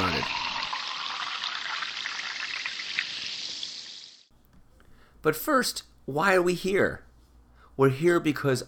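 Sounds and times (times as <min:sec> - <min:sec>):
seltzer pouring into a glass with fizzing bubbles: 0:00.0 - 0:04.2
speech: 0:05.2 - 0:07.1, 0:07.8 - 0:08.6.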